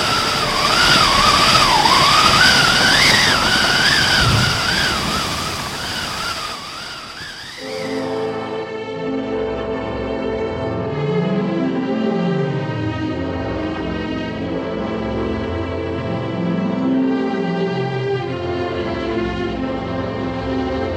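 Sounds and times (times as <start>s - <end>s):
crashing, churning maelstrom waves: 0.0s - 8.4s
stormy sea roaring: 0.0s - 8.5s
high wind howling above the sea: 0.0s - 8.7s
sustained tonal sound: 0.0s - 20.6s.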